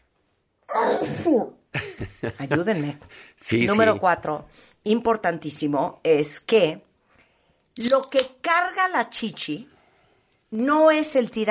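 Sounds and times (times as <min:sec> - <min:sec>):
loud sneeze: 0:00.7 - 0:01.6
speech: 0:00.9 - 0:01.6, 0:02.2 - 0:06.9, 0:07.8 - 0:09.7, 0:10.5 - 0:11.4
laughter: 0:01.8 - 0:02.9, 0:03.7 - 0:04.0.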